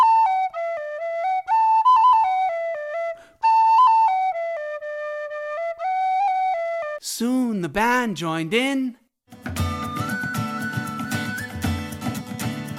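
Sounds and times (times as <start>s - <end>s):
solo penny whistle playing a sweet melody: 0.0s - 7.0s, 9.6s - 12.2s
speech: 7.2s - 9.0s.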